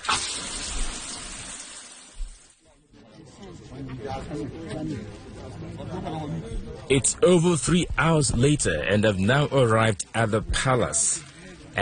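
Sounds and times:
shower water running: 0:00.0 - 0:02.6
faint voices: 0:02.7 - 0:11.8
speech: 0:04.0 - 0:11.8.

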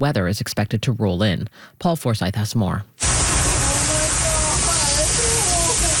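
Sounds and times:
speech: 0:00.0 - 0:03.3
loud steady roar of rushing floodwater: 0:03.0 - 0:05.9
agitated panicked voices shouting: 0:03.4 - 0:05.9.

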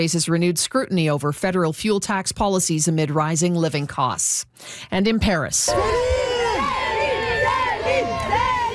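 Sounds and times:
speech: 0:00.0 - 0:06.4
fans cheering and shrieking outside a hotel: 0:05.7 - 0:08.7.

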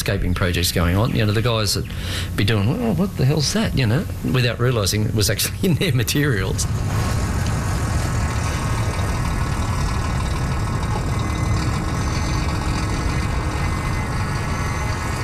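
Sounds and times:
speech: 0:00.0 - 0:07.2
passing traffic in an industrial area of Sydney: 0:00.0 - 0:15.2
truck engines idling in an industrial area of Sydney: 0:00.0 - 0:15.2.

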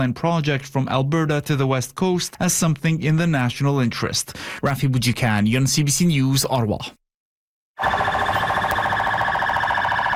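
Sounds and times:
speech: 0:00.0 - 0:07.0
loud electronic sirens on military and police convoy wailing: 0:07.8 - 0:10.1.

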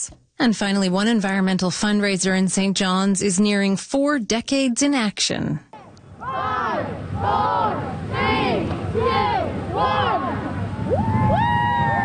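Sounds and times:
speech: 0:00.0 - 0:05.7
large outdoor crowd at a rubber duck race shouting in unison: 0:06.1 - 0:10.9
large outdoor crowd cheering and whooping at a rubber duck race on a river: 0:06.2 - 0:12.0.

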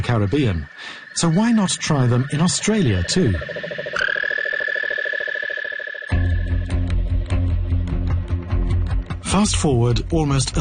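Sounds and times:
speech: 0:00.0 - 0:04.0, 0:09.3 - 0:10.5
cane toad calling with a purring trill: 0:00.0 - 0:06.8
low-pitched rhythmic backing: 0:06.1 - 0:10.5.

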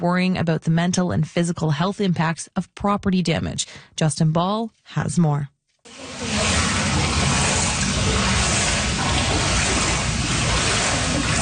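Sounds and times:
speech: 0:00.0 - 0:06.6
water sloshing in a flooded basement after a storm: 0:05.9 - 0:11.4.

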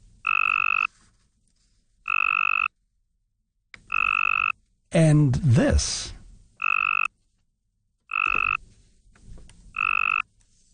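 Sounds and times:
Cope's gray tree frog mating call trills: 0:00.2 - 0:00.9, 0:02.1 - 0:02.7, 0:03.8 - 0:04.6, 0:06.6 - 0:07.1, 0:08.1 - 0:08.6, 0:09.7 - 0:10.3
speech: 0:04.9 - 0:06.2.

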